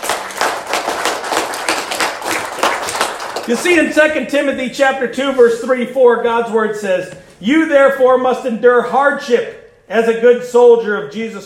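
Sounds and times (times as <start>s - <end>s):
crowd applauding: 0.0s - 3.9s
speech: 3.5s - 11.4s.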